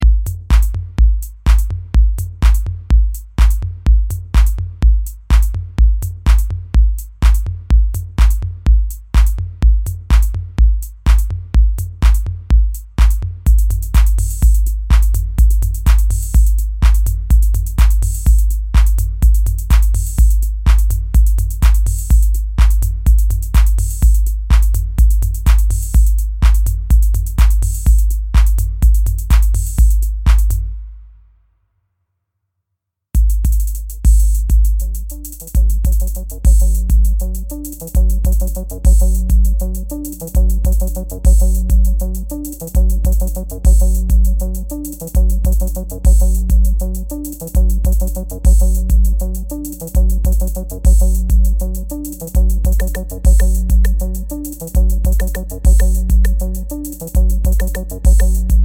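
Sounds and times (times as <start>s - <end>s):
808 kick drums: 0.0s - 30.9s, 33.2s - 58.6s.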